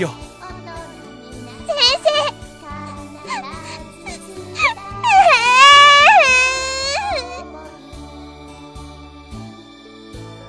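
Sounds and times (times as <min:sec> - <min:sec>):
speech: 0:00.0 - 0:00.2
person crying loudly while being comforted: 0:01.7 - 0:02.3, 0:03.2 - 0:07.4.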